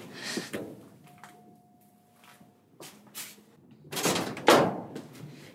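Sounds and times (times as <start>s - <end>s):
electronic doorbell tone ringing at a garage door: 1.0s - 2.7s
door rattling and banging open: 3.9s - 5.0s.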